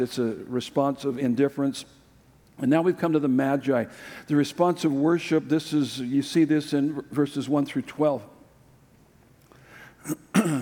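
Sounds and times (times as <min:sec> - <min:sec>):
speech: 0:00.0 - 0:02.0, 0:02.6 - 0:08.3, 0:10.0 - 0:10.6
preacher clearing throat mid-sermon: 0:10.0 - 0:10.6.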